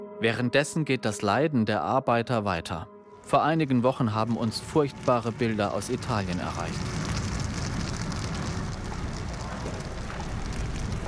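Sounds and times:
speech: 0.2 - 7.0
large fire roaring and crackling at a burning tent camp at night: 3.2 - 11.0.

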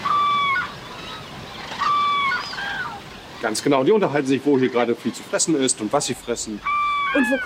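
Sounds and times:
common cranes on meadows trumpeting bugle calls: 0.0 - 3.4, 6.5 - 7.4
speech: 3.4 - 7.4.

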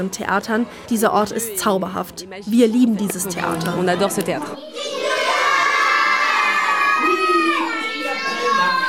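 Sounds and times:
speech: 0.0 - 4.9
crowd of children shouting and calling out at a puppet show: 4.5 - 8.8.

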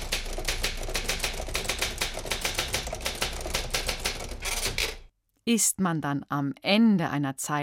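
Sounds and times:
typewriter keys clattering: 0.0 - 5.1
speech: 5.5 - 7.6.

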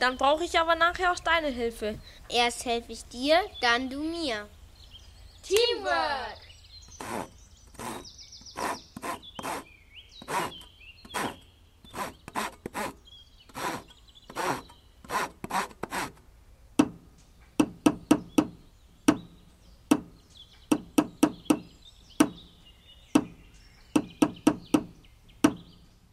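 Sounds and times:
speech: 0.0 - 4.6, 5.4 - 6.4, 7.0 - 9.7, 10.3 - 10.6
birds chirping: 0.0 - 26.1
hammer blows on wood: 6.9 - 16.2, 16.8 - 22.5, 23.1 - 25.8
hand saw cutting through a wooden board: 6.9 - 16.2.

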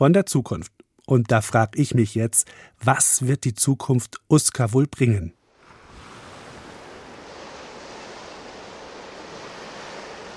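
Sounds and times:
speech: 0.0 - 5.4
ocean surf washing against the shore at a coastal cliff: 5.4 - 10.3.

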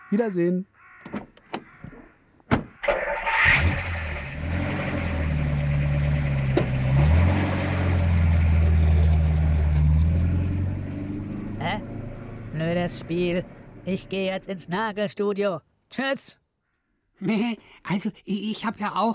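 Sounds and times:
speech: 0.1 - 0.7, 12.8 - 16.4, 17.2 - 19.1
car door clunks: 1.0 - 2.8
car engine starting and revving: 2.8 - 14.2.

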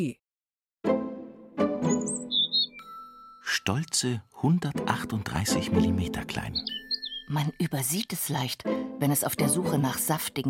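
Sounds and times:
speech: 0.0 - 0.2, 3.5 - 10.4
European robin singing: 1.6 - 4.0, 4.6 - 8.5.

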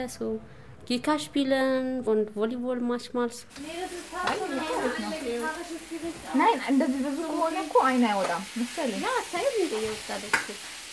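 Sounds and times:
speech: 0.0 - 10.8
voices: 3.5 - 10.6
pancakes and onions sizzling while frying in three pots: 3.5 - 10.9.

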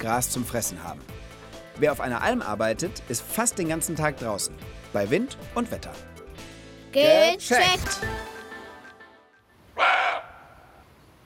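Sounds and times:
speech: 0.0 - 6.1, 6.9 - 8.3
roe deer buck barking: 9.8 - 10.8.

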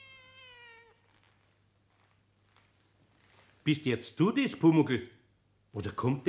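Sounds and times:
cat meowing: 0.0 - 1.3
speech: 3.6 - 5.2, 5.8 - 6.2.

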